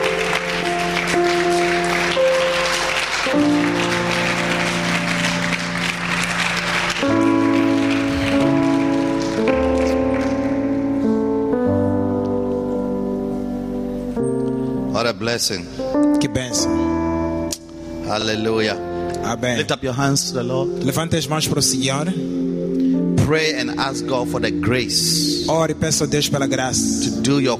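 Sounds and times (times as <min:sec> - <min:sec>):
large audience clapping hands: 0:00.0 - 0:11.0
held organ-like chords: 0:00.0 - 0:27.5
speech: 0:15.3 - 0:17.0, 0:18.1 - 0:22.4, 0:23.2 - 0:27.5.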